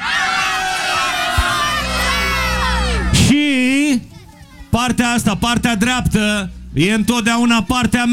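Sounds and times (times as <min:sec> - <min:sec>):
large crowd in Galați shouting a chant: 0:00.0 - 0:03.2
brief low thump: 0:03.1 - 0:03.4
speech: 0:04.8 - 0:08.1.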